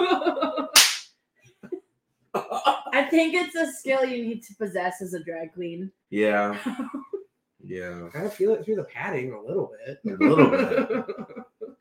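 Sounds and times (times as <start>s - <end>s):
laughter: 0.0s - 0.8s, 2.4s - 3.0s, 6.2s - 11.7s
birthday spanking slap on the body: 0.8s - 1.0s
speech: 3.1s - 7.1s, 7.7s - 11.3s
drawn-out vocal sound: 7.7s - 11.7s.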